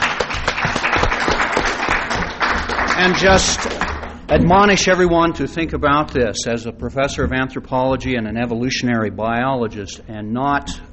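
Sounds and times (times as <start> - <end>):
audience applauding at an academic conference session: 0.0 - 4.2
speech: 3.0 - 10.9.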